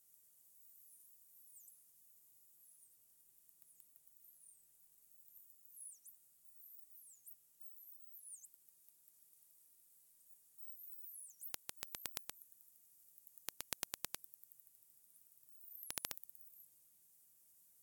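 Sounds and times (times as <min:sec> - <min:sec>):
dolphin clicks: 0:11.4 - 0:12.4, 0:13.3 - 0:14.6, 0:15.8 - 0:16.4.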